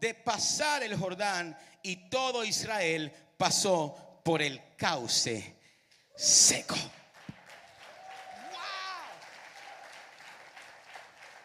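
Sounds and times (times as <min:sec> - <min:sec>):
speech: 0:00.0 - 0:05.6, 0:06.2 - 0:07.0
voice over applause: 0:06.2 - 0:11.4
crowd applauding: 0:06.8 - 0:11.4.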